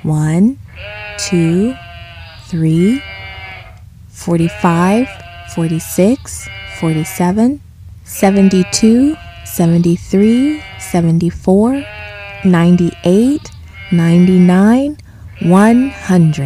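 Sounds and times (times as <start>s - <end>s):
speech: 0.0s - 1.9s, 2.5s - 3.1s, 4.2s - 16.4s
shepherd's flock of sheep bleating: 0.7s - 3.8s, 4.4s - 7.3s, 8.2s - 11.0s, 11.7s - 14.7s, 15.4s - 16.4s.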